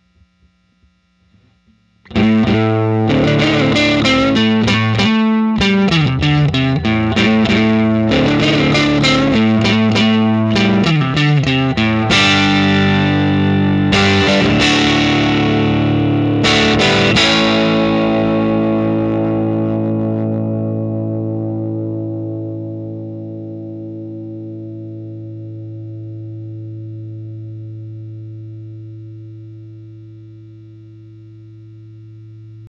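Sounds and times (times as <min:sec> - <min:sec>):
dirty 6V6 valve guitar amplifier: 0:00.0 - 0:32.6.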